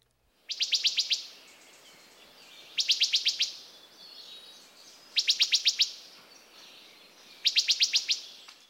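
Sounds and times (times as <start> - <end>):
faint hiss: 0.0 - 8.6
wood thrush pip call notes: 0.5 - 1.4, 2.7 - 3.7, 5.1 - 6.6, 7.3 - 8.6.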